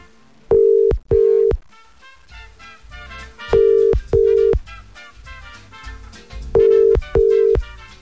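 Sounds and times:
ringback tone of an unanswered telephone call: 0:00.5 - 0:01.6, 0:03.6 - 0:04.6, 0:06.6 - 0:07.6.

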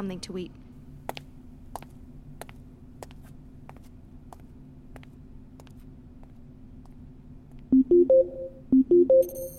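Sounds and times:
low steady hum: 0:00.0 - 0:09.5
stepped electronic phone ringing tones on a computer terminal: 0:07.8 - 0:09.5.

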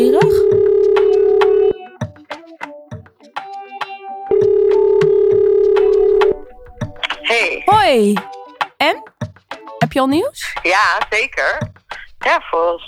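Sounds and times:
ringback tone of an outgoing phone call: 0:00.0 - 0:01.8, 0:04.3 - 0:07.8
speech: 0:07.9 - 0:08.3, 0:10.0 - 0:12.8.

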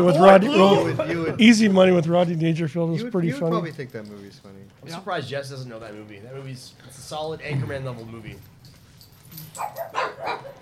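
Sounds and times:
speech: 0:00.0 - 0:08.5, 0:09.3 - 0:10.6
dog barking at thunder during a storm: 0:09.6 - 0:10.6.

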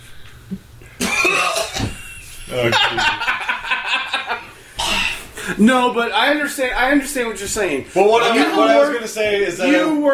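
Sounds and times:
person coughing while inhaling from a vape: 0:01.0 - 0:02.0, 0:04.8 - 0:05.4
snickering laughter: 0:01.2 - 0:04.5
speech: 0:02.5 - 0:03.3, 0:05.5 - 0:10.1.

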